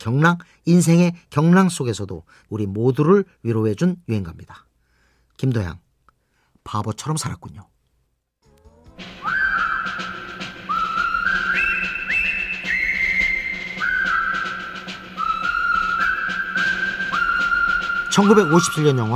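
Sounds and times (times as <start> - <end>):
speech: 0.0 - 4.7, 5.4 - 5.8, 6.6 - 7.7, 18.2 - 19.1
fuller musical backing: 8.4 - 19.1
vigorous whistled march melody: 9.0 - 19.1.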